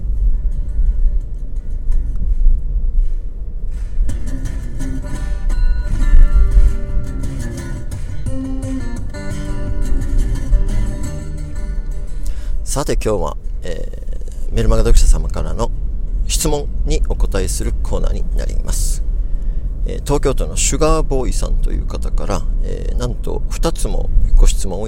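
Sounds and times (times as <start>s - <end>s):
music: 0.0s - 13.5s
low rumble inside a small car driving through towns in Shikoku, Japan: 0.0s - 24.8s
speech: 12.8s - 14.0s, 14.6s - 19.0s, 19.9s - 24.8s.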